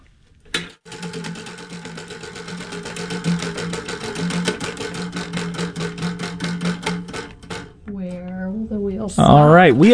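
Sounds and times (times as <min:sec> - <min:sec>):
prize wheel spinning backwards with pointer clicking on pegs: 0:00.8 - 0:07.8.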